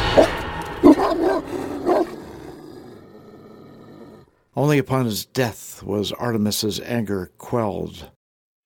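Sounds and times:
hounds baying and barking: 0.1 - 2.9
speech: 4.6 - 8.1.

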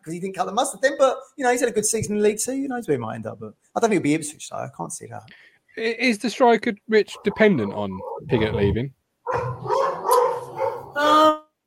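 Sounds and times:
speech: 0.0 - 10.0
several dogs barking and yipping: 7.0 - 8.5, 9.2 - 11.0.

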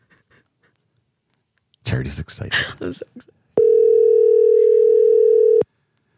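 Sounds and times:
speech: 2.0 - 3.4
electronic ringing tone of an outgoing phone call: 3.6 - 5.6.

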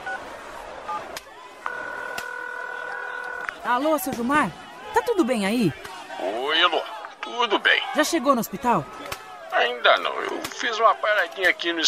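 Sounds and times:
long steady telephone tone: 1.6 - 3.7
telephone keypad tones while dialing a call: 1.7 - 3.6
speech: 3.6 - 11.8.

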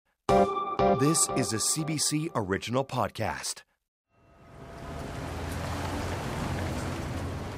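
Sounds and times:
speech: 0.3 - 3.7
steady rain falling: 4.9 - 7.5.

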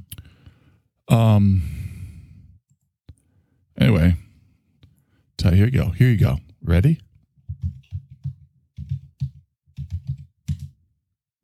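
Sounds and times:
speech: 1.1 - 1.8, 5.6 - 7.1
typing on a computer keyboard: 7.4 - 10.8.

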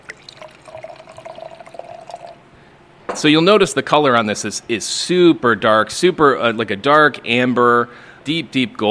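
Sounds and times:
mead pouring into a glass: 0.0 - 2.4
speech: 3.2 - 8.8.

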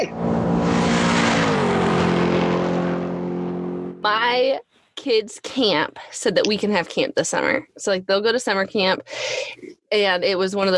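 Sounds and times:
car engine revving hard: 0.0 - 4.1
speech: 4.3 - 10.7.

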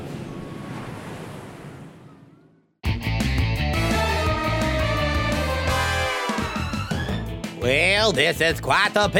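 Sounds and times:
waves crashing in a wave pool: 0.0 - 2.4
loud rhythmic music: 2.9 - 9.1
speech: 8.0 - 9.1.

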